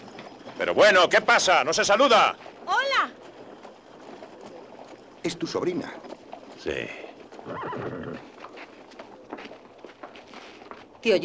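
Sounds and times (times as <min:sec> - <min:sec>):
hoof clops on hard ground: 0:00.0 - 0:11.2
speech: 0:00.6 - 0:03.2, 0:05.2 - 0:08.3, 0:11.0 - 0:11.2
horse neighing: 0:04.3 - 0:08.8.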